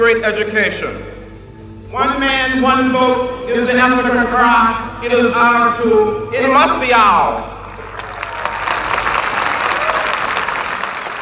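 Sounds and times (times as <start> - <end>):
speech: 0.0 - 1.2, 1.9 - 7.5
crowd applause for a preacher's speech on the mall: 7.6 - 11.2.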